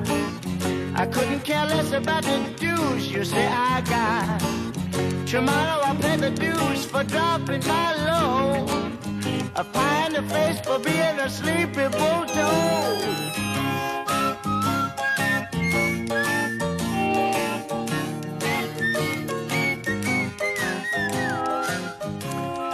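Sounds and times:
full band backing in a pop song with a steady rhythmic beat: 0.0 - 22.7
speech: 1.0 - 13.9
whistled melody in a pop song: 11.9 - 22.7.

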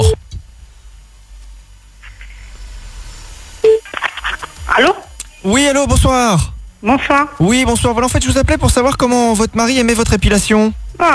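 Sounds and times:
near-quiet telephone line noise: 3.6 - 4.6
speech: 4.8 - 11.1.

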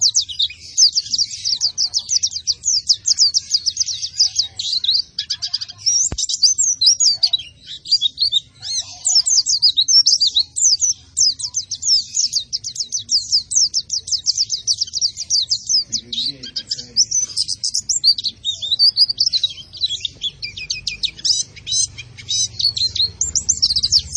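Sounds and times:
white-eye in sustained energetic song: 0.0 - 24.1.

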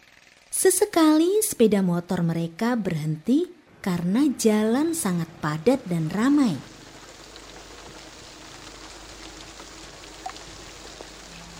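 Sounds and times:
speech: 0.6 - 6.7
rain falling on a roadside: 5.8 - 11.5.

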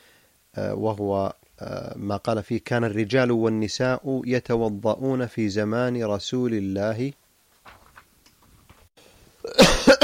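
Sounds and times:
speech: 0.6 - 7.2
person coughing harshly: 9.4 - 10.0.

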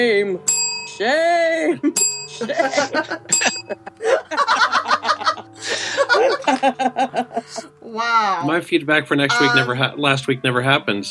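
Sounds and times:
speech: 0.0 - 4.6, 6.2 - 11.0
small bell ringing with a bright metallic tone: 0.5 - 1.1, 1.8 - 3.8
people laughing: 1.6 - 7.8.

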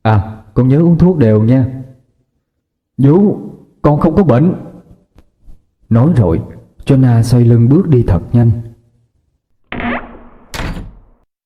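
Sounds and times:
speech: 0.0 - 1.8, 3.0 - 4.7, 5.9 - 8.7
wooden room door closing: 9.7 - 11.2.

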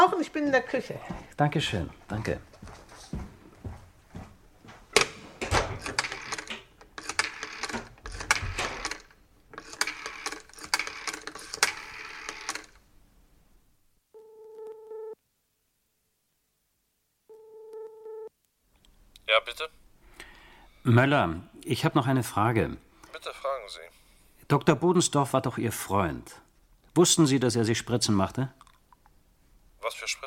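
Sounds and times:
speech: 0.0 - 3.3, 19.4 - 19.8, 20.8 - 23.9, 24.5 - 26.4, 27.0 - 28.6, 29.9 - 30.2
telephone number being dialed with mechanical clicking: 5.8 - 12.8
telephone line ringing: 6.0 - 7.8, 9.6 - 12.8.

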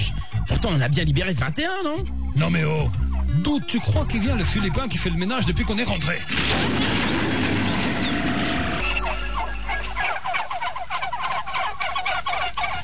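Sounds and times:
turkeys gobbling: 0.0 - 12.8
speech: 0.1 - 7.2
low rough drone: 7.0 - 10.3.

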